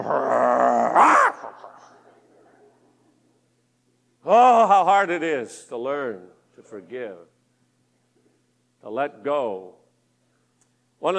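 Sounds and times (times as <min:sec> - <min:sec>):
speech: 0:00.0 - 0:00.4, 0:04.3 - 0:07.3, 0:08.8 - 0:09.8, 0:11.0 - 0:11.1
dog growling: 0:00.0 - 0:01.6.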